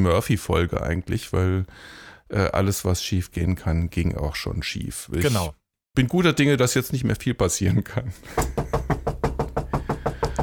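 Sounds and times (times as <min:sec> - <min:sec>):
speech: 0:00.0 - 0:09.0
knocking on a hard plastic surface: 0:08.5 - 0:10.4.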